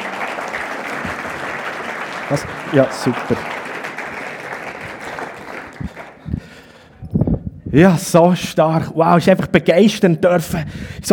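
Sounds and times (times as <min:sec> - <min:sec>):
audience applause: 0:00.0 - 0:06.8
speech: 0:02.3 - 0:03.6, 0:07.8 - 0:11.1.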